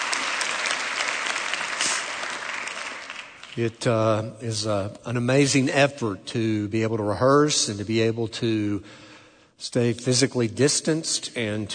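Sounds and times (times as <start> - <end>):
audience applauding choir and orchestra: 0.0 - 3.6
speech: 3.6 - 11.7.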